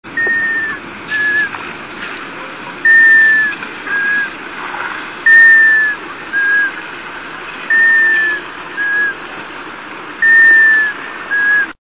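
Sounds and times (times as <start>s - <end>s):
White-winged scoter calling: 0.2s - 1.6s, 2.8s - 4.4s, 5.2s - 6.8s, 7.7s - 9.2s, 10.2s - 11.8s.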